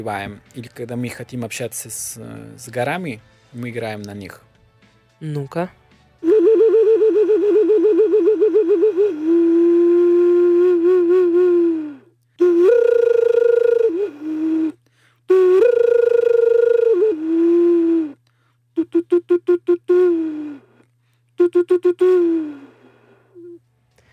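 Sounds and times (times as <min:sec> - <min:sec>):
speech: 0:00.0 - 0:04.5, 0:05.2 - 0:06.5
Andean bull-horn wind instrument playing: 0:06.2 - 0:14.7, 0:15.3 - 0:18.1, 0:18.8 - 0:20.5, 0:21.4 - 0:22.6.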